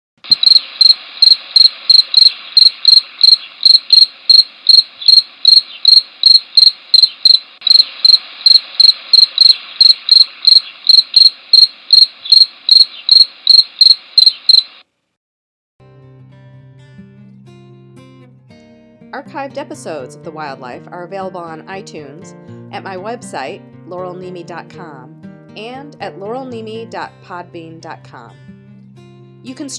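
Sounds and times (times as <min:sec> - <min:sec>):
field cricket chirping: 0:00.2 - 0:14.8
speech: 0:19.4 - 0:28.5, 0:29.4 - 0:29.7.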